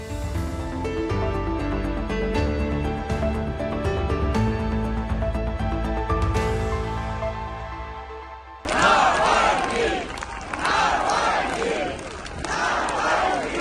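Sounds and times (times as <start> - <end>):
instrumental music: 0.0 - 8.7
crowd chanting a name at a funeral: 8.6 - 13.5.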